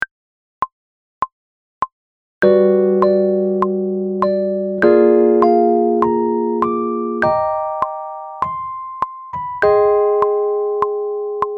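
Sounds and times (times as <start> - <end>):
chords: 2.4 - 11.5.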